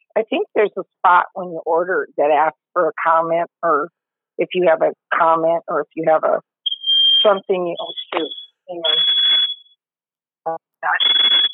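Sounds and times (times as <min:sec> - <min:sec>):
speech: 0:00.2 - 0:06.5, 0:07.2 - 0:09.3, 0:10.4 - 0:11.1
smoke alarm set off by burning cookies: 0:06.6 - 0:09.8, 0:11.0 - 0:11.5.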